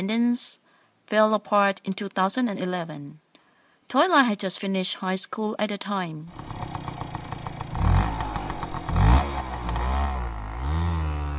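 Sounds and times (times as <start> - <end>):
speech: 0.0 - 3.2, 3.9 - 6.8
motorbike engine revving and riding: 6.3 - 11.3.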